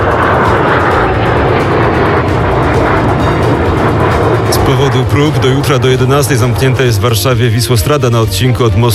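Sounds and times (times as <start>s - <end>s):
military aircraft flying overhead: 0.0s - 8.9s
speech: 4.9s - 8.9s.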